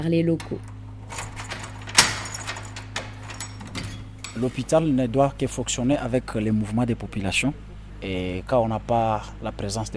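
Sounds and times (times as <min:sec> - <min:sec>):
speech: 0:00.0 - 0:00.8, 0:04.4 - 0:09.9
low steady hum: 0:00.0 - 0:09.9
scattered rattles and clicks of doors: 0:00.4 - 0:04.7
keys jangling while unlocking hospital doors: 0:00.7 - 0:04.7
sharp metallic clink: 0:01.0 - 0:04.6.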